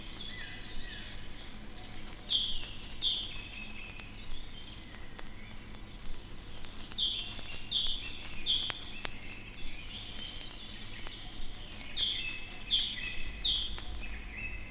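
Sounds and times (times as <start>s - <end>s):
soft steady hiss: 0.0s - 14.6s
great tit giving sharp ringing chirps: 1.8s - 3.9s, 6.6s - 10.0s, 11.5s - 14.6s.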